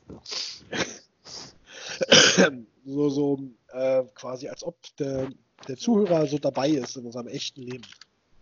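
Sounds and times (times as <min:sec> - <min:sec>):
raspy throat clearing: 0:02.0 - 0:02.6
speech: 0:02.4 - 0:08.0.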